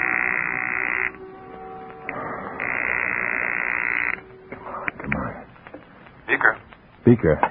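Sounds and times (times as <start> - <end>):
buzzing telephone line tones in a phone booth: 0.0 - 4.5
speech: 6.4 - 7.4.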